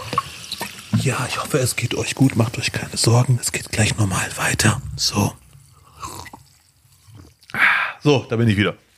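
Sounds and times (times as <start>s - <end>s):
liquid dripping: 0.0s - 7.6s
sipping a drink of water: 0.0s - 8.0s
speech: 1.0s - 5.4s, 8.0s - 8.8s
soft slurps: 5.4s - 7.6s
small wet swallowing sounds: 5.5s - 7.6s
louder gulp of liquid: 5.7s - 7.6s.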